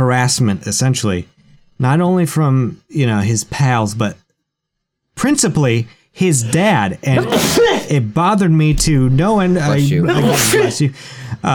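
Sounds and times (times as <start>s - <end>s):
speech: 0.0s - 4.2s, 5.2s - 11.5s
sneeze: 7.2s - 8.0s, 9.7s - 10.8s.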